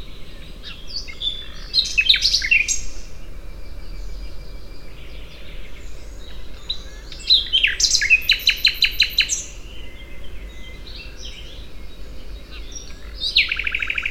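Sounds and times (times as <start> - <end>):
common nightingale Luscinia megarhynchos singing: 0.0 - 14.0.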